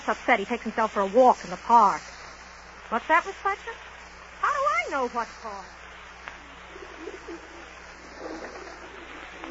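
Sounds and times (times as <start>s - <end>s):
speech: 0.0s - 2.1s, 2.9s - 3.9s, 4.9s - 5.8s, 7.0s - 7.6s
steady outdoor hum: 0.0s - 9.4s
pigeons cooing: 6.6s - 9.4s.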